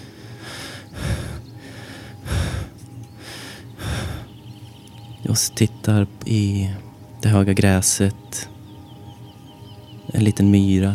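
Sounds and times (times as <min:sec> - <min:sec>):
person lying in tall grass breathing: 0:00.0 - 0:04.4
speech: 0:05.3 - 0:08.5, 0:10.1 - 0:10.9.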